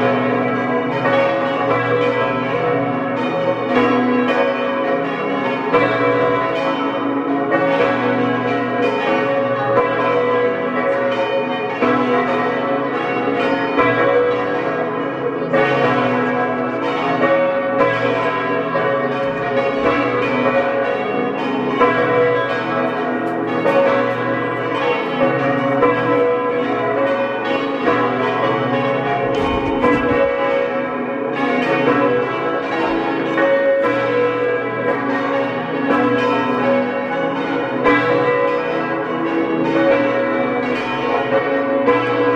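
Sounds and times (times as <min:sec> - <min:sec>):
parish church bells pealing at noon in Matrei in Osttirol: 0:00.0 - 0:42.3.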